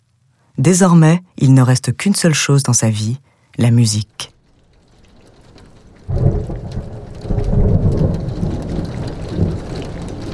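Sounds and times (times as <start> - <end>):
speech: 0.6 - 4.3
steady heavy rain falling: 3.6 - 10.3.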